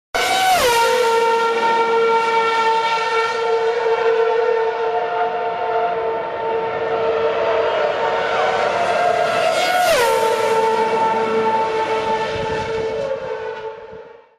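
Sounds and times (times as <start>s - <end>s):
racing car: 0.2s - 14.3s.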